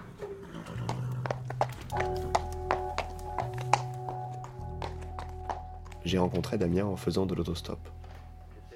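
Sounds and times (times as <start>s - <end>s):
horse galloping hoofbeats: 0.3s - 6.4s
speech: 6.0s - 8.0s.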